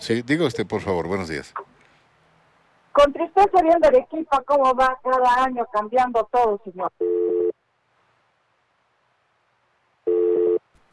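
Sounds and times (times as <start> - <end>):
speech: 0.0 - 1.7, 3.0 - 7.4
telephone busy tone after a dropped phone call: 7.0 - 7.5, 10.1 - 10.6.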